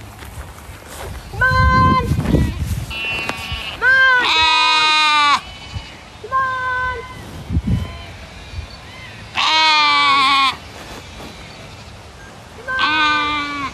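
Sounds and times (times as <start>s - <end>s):
Southdown baby doll sheep bleating: 1.6s - 7.0s, 9.3s - 11.3s, 12.7s - 13.7s.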